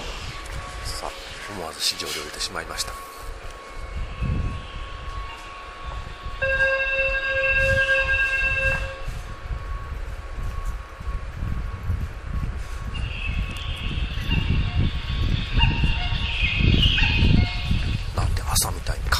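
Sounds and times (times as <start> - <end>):
Keihan electric train rumbling in motion: 0.0 - 19.1
speech: 1.0 - 3.1
sustained tonal horn-like signal of a Keihan electric train: 2.1 - 10.8, 13.0 - 17.8.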